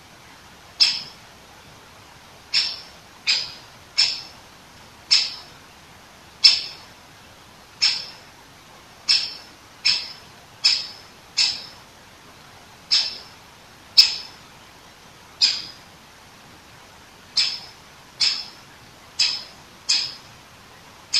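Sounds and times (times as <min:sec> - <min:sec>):
Great Spotted Woodpecker calling: 0:00.8 - 0:01.2, 0:02.5 - 0:04.4, 0:05.1 - 0:05.6, 0:06.4 - 0:06.9, 0:07.8 - 0:08.3, 0:09.0 - 0:11.8, 0:12.9 - 0:13.4, 0:14.0 - 0:14.4, 0:15.4 - 0:15.8, 0:17.3 - 0:20.4.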